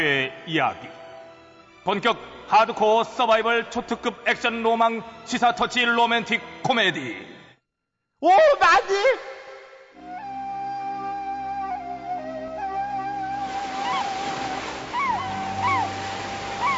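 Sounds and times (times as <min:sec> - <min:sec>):
speech: 0:00.0 - 0:01.0, 0:01.8 - 0:07.3, 0:08.2 - 0:09.4
rising-and-falling cries: 0:10.3 - 0:16.7
ocean waves washing onto a beach: 0:13.3 - 0:16.7.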